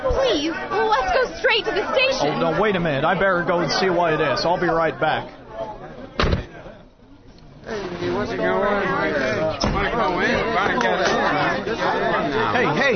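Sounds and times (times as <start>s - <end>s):
dense crowd chattering outside a bank: 0.0s - 12.9s
speech: 0.4s - 5.8s, 7.7s - 12.9s
sharp thuds: 6.2s - 6.5s.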